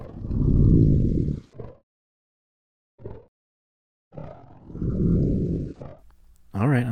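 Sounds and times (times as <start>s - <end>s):
pitch-shifted morphed creature roars: 0.0s - 1.8s, 4.1s - 6.0s.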